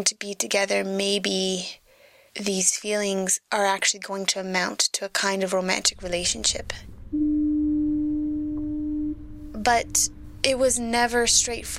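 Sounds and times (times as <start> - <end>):
speech: 0.0 - 1.8, 2.4 - 7.2, 9.6 - 11.7
foghorn sounding a steady low tone: 7.0 - 11.0.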